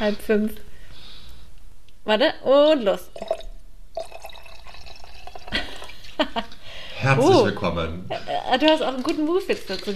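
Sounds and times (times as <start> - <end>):
speech: 0.0 - 0.7, 2.1 - 3.3, 7.0 - 9.9
drink being poured into a glass: 3.1 - 6.0.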